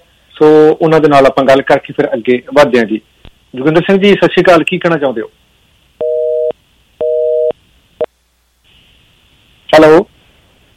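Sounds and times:
faint telephone line hiss: 0:00.0 - 0:10.7
speech: 0:00.4 - 0:05.4, 0:09.7 - 0:10.1
busy tone after a dropped telephone line: 0:06.0 - 0:07.5.

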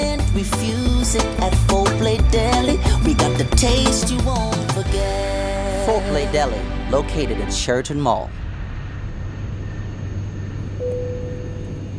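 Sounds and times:
speech: 0:00.4 - 0:02.8, 0:03.4 - 0:08.4
airliner cabin in flight engine and air noise drone: 0:06.3 - 0:11.9.

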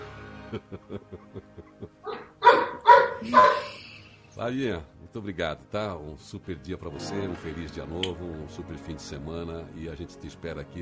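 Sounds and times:
laughter: 0:00.3 - 0:02.4
speech: 0:00.5 - 0:02.2, 0:03.2 - 0:03.8, 0:04.4 - 0:10.8
dog barking: 0:02.0 - 0:03.8.

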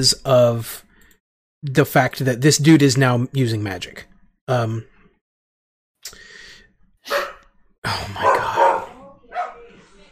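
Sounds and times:
speech: 0:00.0 - 0:00.9, 0:01.6 - 0:04.9, 0:07.1 - 0:08.3
dog barking: 0:07.1 - 0:07.5, 0:08.2 - 0:09.7.

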